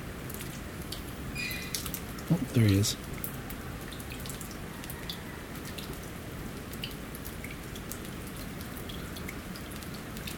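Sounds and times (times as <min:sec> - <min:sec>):
water dripping from melting ice: 0:00.2 - 0:10.3
speech: 0:02.3 - 0:03.2.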